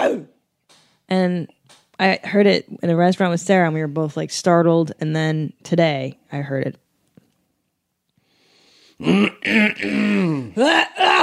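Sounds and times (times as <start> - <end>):
speech: 1.1 - 6.8, 9.0 - 11.2
throat clearing: 9.0 - 11.2.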